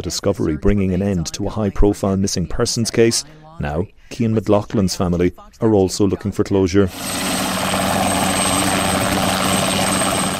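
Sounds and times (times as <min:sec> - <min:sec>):
speech: 0:00.0 - 0:07.9
helicopter rotor roar during a rescue search: 0:06.9 - 0:10.3.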